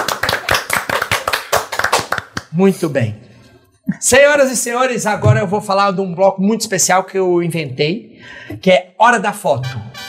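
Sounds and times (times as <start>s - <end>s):
brisk clapping from a group of people: 0.0s - 2.6s
speech: 2.6s - 3.2s, 3.9s - 9.9s.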